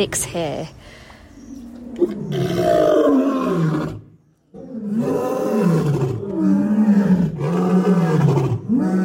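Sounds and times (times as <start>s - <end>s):
male lion roaring at a lion breeding farm: 1.8s - 9.0s.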